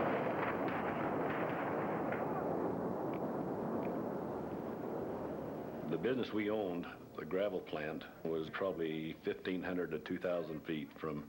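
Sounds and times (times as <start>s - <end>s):
heavy continuous roar of a large industrial explosion: 0.0s - 7.2s
speech: 5.9s - 11.2s.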